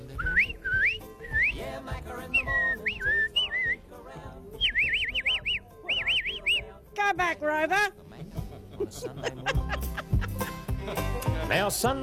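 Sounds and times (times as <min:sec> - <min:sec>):
person whistling rising and warbling calls to livestock: 0:00.1 - 0:03.8, 0:04.6 - 0:06.7
speech: 0:07.1 - 0:08.0, 0:11.5 - 0:12.0
laughter: 0:08.2 - 0:11.8.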